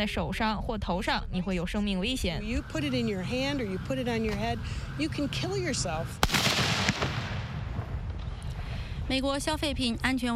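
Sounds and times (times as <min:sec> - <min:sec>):
speech: 0:00.0 - 0:06.4, 0:09.1 - 0:10.3
voices calling out: 0:02.0 - 0:06.2
hissing crackling firework tail: 0:02.2 - 0:09.0
consumer firework blast: 0:06.2 - 0:08.6.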